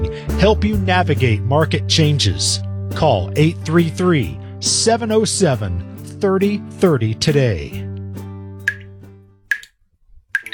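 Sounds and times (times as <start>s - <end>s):
speech: 0.3s - 7.9s
leaky faucet dripping: 8.6s - 10.5s.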